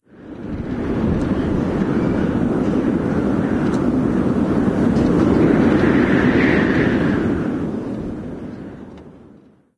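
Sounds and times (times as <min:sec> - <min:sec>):
wind gust: 0:00.0 - 0:09.7.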